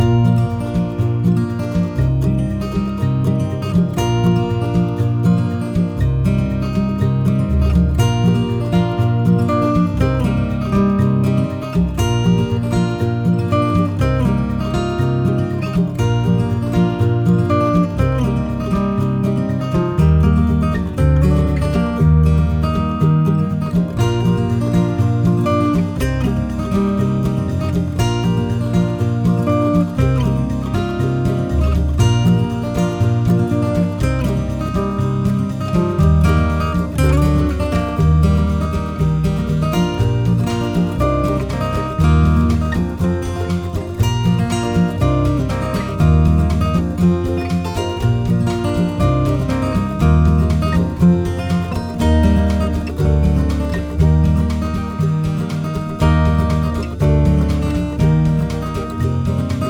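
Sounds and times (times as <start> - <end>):
acoustic loop: 0.0 - 59.6.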